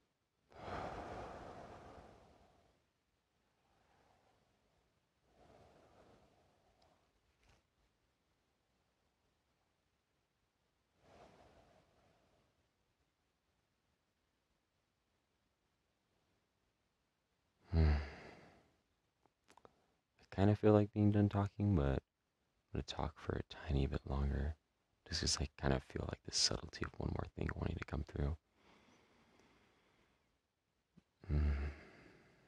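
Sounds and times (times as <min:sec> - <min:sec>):
deep slow breaths with sigh-like exhalations: 0:00.5 - 0:02.9, 0:03.5 - 0:07.1, 0:11.0 - 0:12.5, 0:17.7 - 0:18.8, 0:28.5 - 0:30.4, 0:31.2 - 0:32.4
speech: 0:20.4 - 0:22.0, 0:22.8 - 0:28.4, 0:31.2 - 0:31.8.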